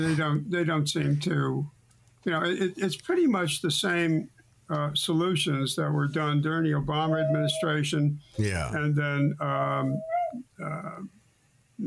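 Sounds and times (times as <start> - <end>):
speech: 0.0 - 11.2
dog whimpering: 7.1 - 7.8.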